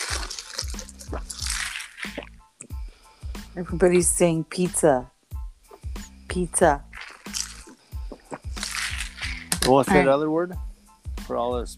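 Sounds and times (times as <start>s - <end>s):
water pouring: 0.0s - 2.3s, 6.8s - 7.7s, 8.6s - 9.8s
speech: 3.6s - 5.1s, 6.3s - 6.9s, 9.6s - 10.7s, 11.3s - 11.7s.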